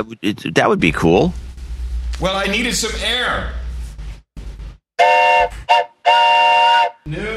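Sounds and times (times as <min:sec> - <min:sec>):
speech: 0:00.0 - 0:01.4, 0:02.2 - 0:03.6
rumbling noise: 0:00.1 - 0:04.8
train whistle blowing outside: 0:05.0 - 0:07.1.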